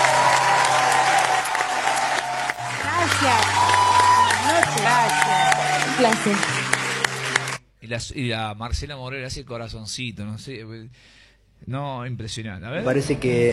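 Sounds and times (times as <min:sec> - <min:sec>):
crowd applauding: 0:00.0 - 0:07.6
speech: 0:04.9 - 0:06.6, 0:07.9 - 0:13.5.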